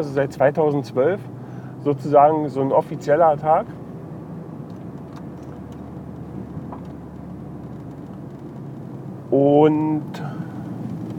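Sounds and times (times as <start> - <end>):
speech: 0.0 - 3.8, 9.3 - 10.3
road noise inside a car moving in traffic: 0.0 - 11.1
faint clicks and ticks inside a car: 4.6 - 9.2.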